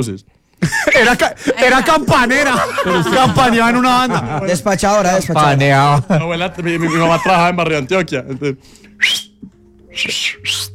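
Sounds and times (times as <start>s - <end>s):
speech: 0.0s - 9.3s, 10.0s - 10.7s
laughter: 0.6s - 5.2s, 5.8s - 7.7s
person whistling through the mouth: 8.9s - 10.7s.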